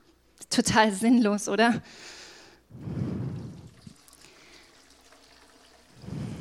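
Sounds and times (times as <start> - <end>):
speech: 0.6 - 3.0
water pouring and splashing into a leaking bucket: 3.4 - 6.3.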